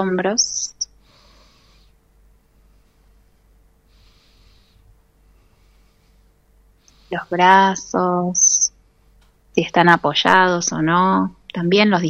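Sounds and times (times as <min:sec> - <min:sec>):
speech: 0:00.0 - 0:00.8, 0:07.1 - 0:08.6, 0:09.6 - 0:12.0
soft airy breaths during a relaxation exercise: 0:00.9 - 0:07.6.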